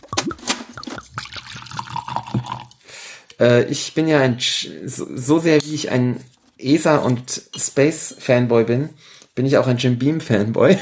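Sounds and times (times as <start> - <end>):
liquid pouring from a corked bottle into a glass: 0.2 - 2.8
speech: 3.4 - 10.8.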